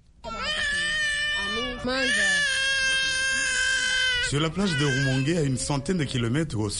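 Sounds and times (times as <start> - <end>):
hungry baby crying in its mother's arms on a beach: 0.2 - 6.4
speech: 1.8 - 2.4, 4.3 - 6.7.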